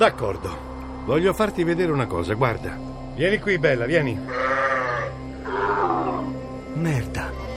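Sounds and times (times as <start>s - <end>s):
speech: 0.0s - 4.6s, 6.8s - 7.4s
electric mechanical sheep bleating: 4.3s - 6.2s.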